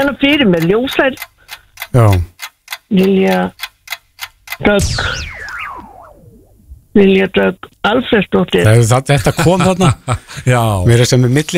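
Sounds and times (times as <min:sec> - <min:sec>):
quiz clock ticking: 0:00.0 - 0:04.9
speech: 0:00.1 - 0:01.3, 0:01.9 - 0:02.3, 0:02.9 - 0:03.6, 0:04.6 - 0:05.3, 0:07.0 - 0:11.5
falling electronic sweep: 0:04.8 - 0:06.9.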